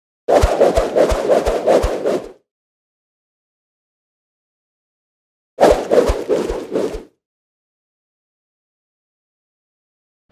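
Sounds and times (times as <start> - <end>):
ropes swinging: 0.3 - 2.3, 5.6 - 7.0.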